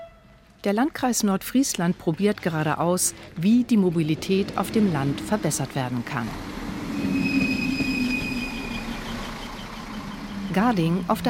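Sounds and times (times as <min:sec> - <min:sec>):
regional train rolling into a station with low rumble of the cars: 0:00.0 - 0:11.2
speech: 0:00.6 - 0:06.6, 0:10.6 - 0:11.2
thin high-pitched regional train wheel squeals: 0:06.8 - 0:10.5.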